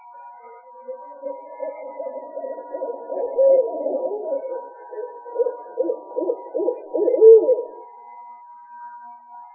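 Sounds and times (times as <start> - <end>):
faint steady hum: 0.0 - 9.5
owl hoots: 0.9 - 7.8.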